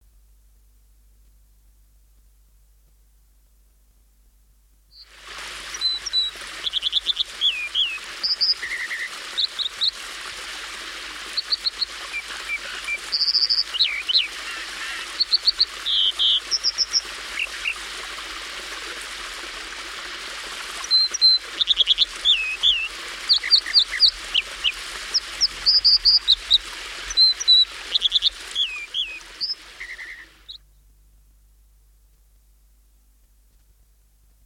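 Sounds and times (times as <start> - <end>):
dipper calling: 5.0 - 30.6
songbirds singing: 11.4 - 17.8, 20.8 - 30.8.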